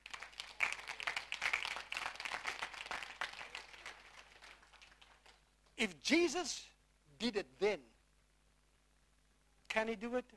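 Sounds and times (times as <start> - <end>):
audience applause: 0.0 - 5.4
speech: 5.8 - 7.9, 9.8 - 10.3.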